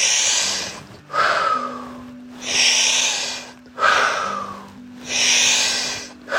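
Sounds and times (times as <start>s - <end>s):
forceful breathing in and out during a guided breathing exercise: 0.0s - 6.3s.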